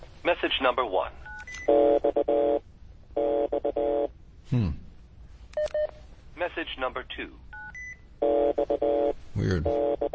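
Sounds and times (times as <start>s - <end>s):
speech: 0.3s - 4.8s, 6.4s - 7.4s, 8.2s - 10.1s
touch-tone keypad beeps on a recorded phone voicemail message: 7.6s - 8.0s.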